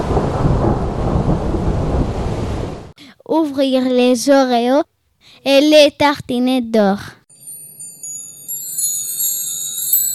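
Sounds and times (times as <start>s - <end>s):
loud rolling thunder: 0.0s - 2.9s
rain: 0.0s - 3.0s
speech: 3.3s - 7.2s.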